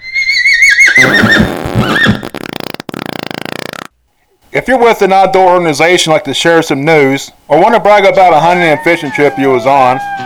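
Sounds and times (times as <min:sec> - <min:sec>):
horse whinny: 0:00.0 - 0:03.9
horse snorting: 0:00.9 - 0:04.6
speech: 0:04.6 - 0:10.2.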